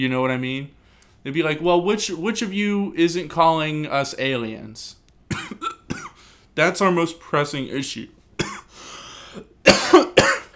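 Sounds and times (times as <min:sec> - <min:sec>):
speech: 0:00.0 - 0:05.0, 0:06.6 - 0:08.2
soft breathy inhale: 0:00.8 - 0:01.2, 0:06.2 - 0:06.5, 0:08.7 - 0:09.5
person coughing: 0:05.3 - 0:06.2, 0:08.4 - 0:10.5.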